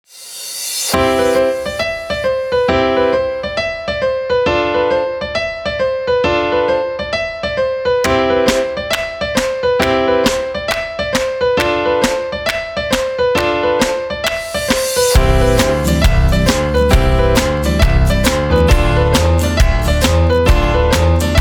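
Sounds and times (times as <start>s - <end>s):
happy piano tune: 1.0s - 21.4s.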